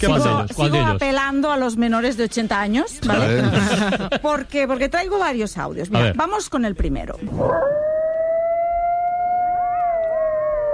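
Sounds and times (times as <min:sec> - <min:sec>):
speech: 0:00.0 - 0:07.9
laughter: 0:03.0 - 0:04.5
coyote howling: 0:07.4 - 0:10.7.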